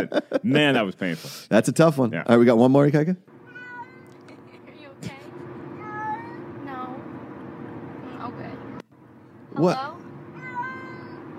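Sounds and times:
laughter: 0.0s - 0.9s
speech: 0.0s - 3.3s, 9.6s - 10.0s
cat meowing: 3.4s - 4.3s, 5.8s - 6.5s, 10.3s - 11.3s.

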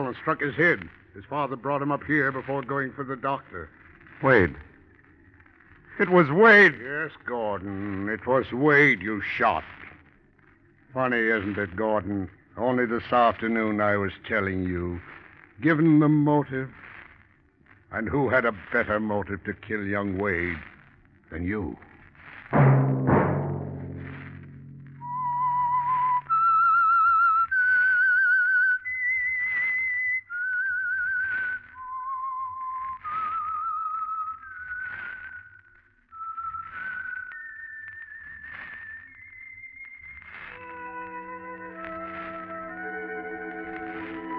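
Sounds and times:
speech: 0.0s - 4.7s, 6.0s - 9.8s, 10.9s - 16.8s, 17.9s - 20.7s, 21.3s - 21.9s
low rumbling tone: 22.6s - 26.7s
lone whistled eerie melody: 24.4s - 44.3s.

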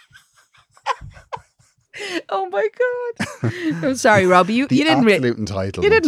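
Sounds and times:
laughter: 0.0s - 2.3s, 3.2s - 5.1s
voice imitating heavy breathing with exaggerated panting: 0.0s - 2.3s
speech: 2.0s - 6.0s.

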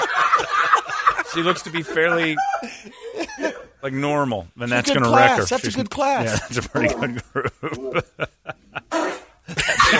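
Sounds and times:
laughter: 0.0s - 3.8s, 6.0s - 9.9s
speech: 1.3s - 8.4s
fart from a teen girl as a grown man pushes on her: 8.9s - 9.4s.

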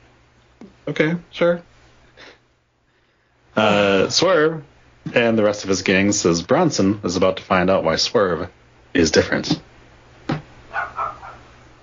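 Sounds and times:
speech: 0.6s - 2.4s, 3.6s - 9.7s
dog barking and yelping: 10.7s - 11.6s.

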